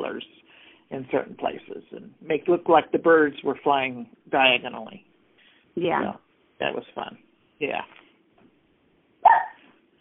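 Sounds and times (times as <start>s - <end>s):
speech: 0.9s - 5.1s, 5.8s - 8.0s
black and white party-colored schnauzer barking: 9.2s - 9.7s.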